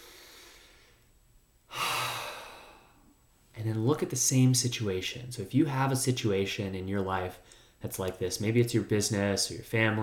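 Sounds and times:
breath: 0:00.0 - 0:01.1, 0:01.7 - 0:03.1, 0:07.4 - 0:07.8
speech: 0:03.6 - 0:10.0.

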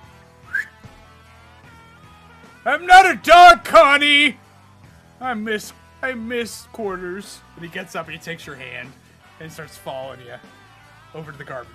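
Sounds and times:
person whistling: 0:00.4 - 0:00.9
speech: 0:02.6 - 0:04.4, 0:05.2 - 0:11.7.

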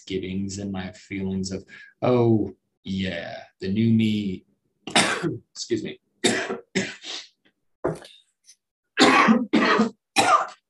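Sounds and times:
speech: 0:00.0 - 0:07.2
person coughing harshly: 0:04.9 - 0:05.4, 0:06.2 - 0:07.3, 0:09.0 - 0:10.6.

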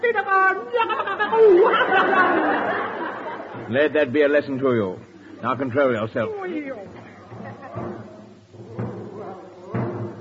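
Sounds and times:
indistinct voices and chatter murmuring: 0:00.0 - 0:10.2
laughter: 0:00.6 - 0:03.9, 0:07.0 - 0:08.2
speech: 0:03.6 - 0:08.0
drum banged by a military man: 0:06.9 - 0:10.2.

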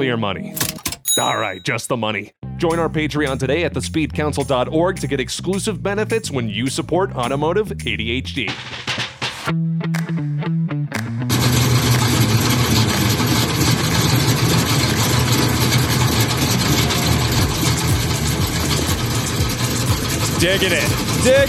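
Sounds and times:
speech: 0:00.0 - 0:11.0, 0:20.4 - 0:21.4
Chevy Monza car engine cranking and idling: 0:11.3 - 0:21.4.

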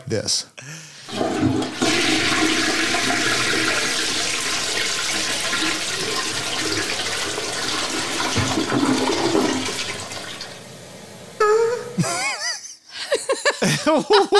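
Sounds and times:
speech: 0:00.1 - 0:01.8, 0:14.0 - 0:14.3
toilet flushing: 0:01.0 - 0:12.2
laughter: 0:12.0 - 0:14.3.

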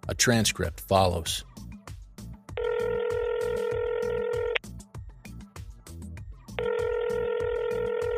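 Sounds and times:
low rhythmic background: 0:00.0 - 0:08.1
speech: 0:00.1 - 0:01.6
telephone ringing before a call: 0:02.6 - 0:04.6, 0:06.6 - 0:08.1.

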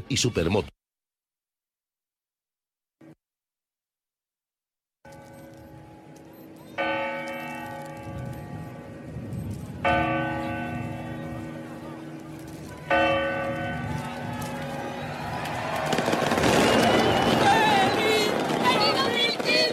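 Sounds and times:
speech: 0:00.1 - 0:00.8
New Year's Eve midnight clock bell strikes: 0:05.1 - 0:14.6
steady hum of crowd noise: 0:06.1 - 0:19.7.

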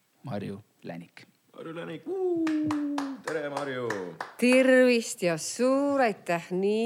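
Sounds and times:
speech: 0:00.2 - 0:06.8
hand claps: 0:02.4 - 0:04.7.

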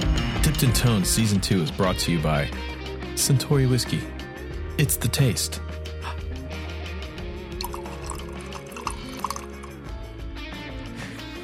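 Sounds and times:
speech: 0:00.6 - 0:04.2, 0:04.8 - 0:05.8
liquid pouring into a glass: 0:07.6 - 0:09.8.

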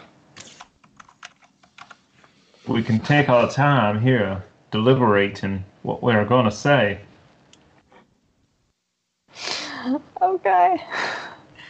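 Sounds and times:
computer keyboard clattering as a message is typed: 0:00.4 - 0:02.0
speech: 0:02.7 - 0:07.1, 0:10.2 - 0:11.3.

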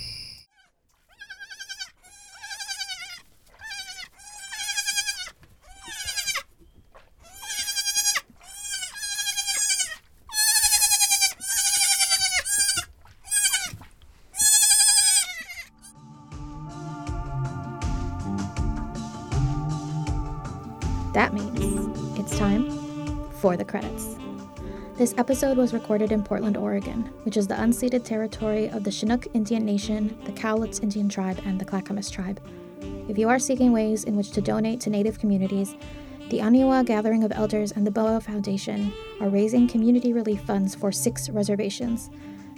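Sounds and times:
baby goats bleating: 0:00.6 - 0:06.5, 0:07.2 - 0:13.8, 0:14.4 - 0:15.9
music: 0:15.7 - 0:42.5
speech: 0:23.5 - 0:24.3, 0:25.0 - 0:42.3.

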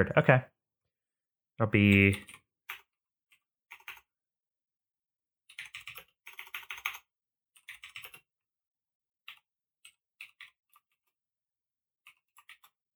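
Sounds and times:
speech: 0:00.0 - 0:00.5, 0:01.6 - 0:02.4
typing on a computer keyboard: 0:02.0 - 0:02.9, 0:03.7 - 0:04.1, 0:05.5 - 0:08.3, 0:09.2 - 0:11.1, 0:12.0 - 0:12.8.

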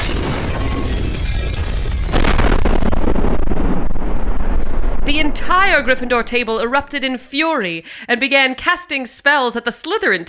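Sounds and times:
crackling debris: 0:00.0 - 0:07.3
loud explosions: 0:00.0 - 0:07.3
speech: 0:05.5 - 0:10.2.

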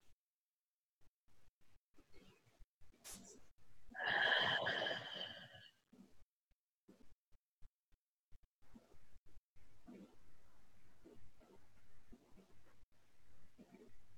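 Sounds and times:
deep breathing during a guided meditation: 0:04.0 - 0:05.6.

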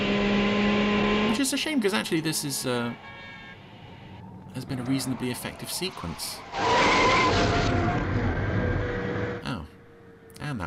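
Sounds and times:
roaring car engine and road noise: 0:00.0 - 0:10.6
speech: 0:01.5 - 0:03.1, 0:04.6 - 0:08.0
car tire screech while skidding: 0:04.2 - 0:09.5.

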